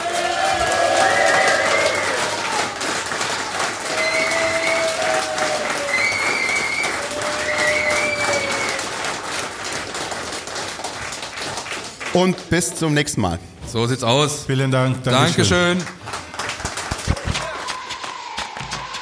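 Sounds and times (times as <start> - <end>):
audience cheers: 0.0 - 9.2, 17.0 - 19.0
large audience applauding a guest: 0.0 - 12.9, 15.2 - 19.0
sharp whistles from audience: 5.9 - 8.8
speech: 12.2 - 16.2.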